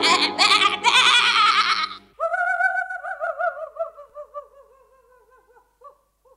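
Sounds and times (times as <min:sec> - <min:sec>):
goat bleating: 0:00.0 - 0:02.1.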